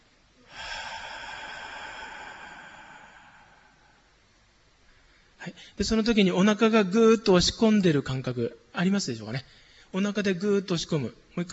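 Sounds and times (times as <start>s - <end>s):
slow breathy exhale during a guided abdominal breathing exercise: 0.4s - 4.2s
speech: 5.4s - 11.5s.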